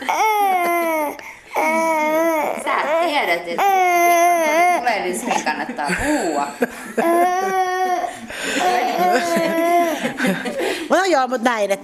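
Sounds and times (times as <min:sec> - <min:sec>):
baby babbling: 0:00.0 - 0:05.5, 0:07.0 - 0:10.0
speech: 0:03.3 - 0:03.8, 0:04.9 - 0:07.6, 0:08.5 - 0:11.8
laughter: 0:05.1 - 0:11.0.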